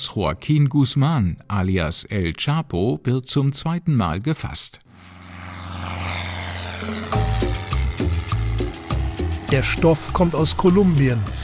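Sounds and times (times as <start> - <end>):
speech: 0.1 - 5.2, 9.5 - 11.4
propeller airplane flying: 4.9 - 11.4
rhythmic thumps and tones: 6.8 - 11.0.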